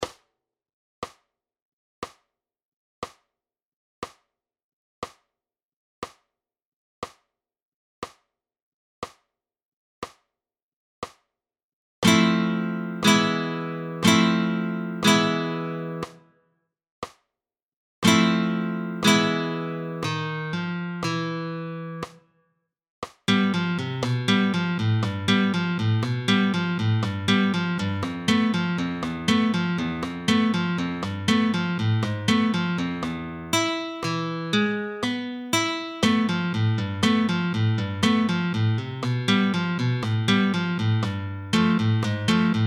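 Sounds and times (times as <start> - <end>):
flamenco guitar alzapua thumb strokes: 12.0 - 16.2, 18.0 - 22.2, 23.3 - 42.6.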